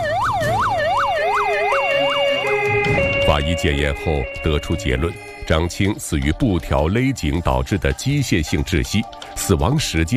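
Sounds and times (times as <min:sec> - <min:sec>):
police car and ambulance sirens wailing at a scene in China: 0:00.0 - 0:06.1
speech: 0:03.3 - 0:10.1.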